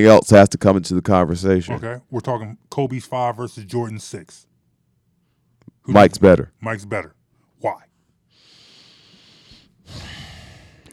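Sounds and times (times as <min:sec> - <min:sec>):
speech: 0:00.0 - 0:04.5, 0:05.8 - 0:07.9
deep breath: 0:08.3 - 0:10.9.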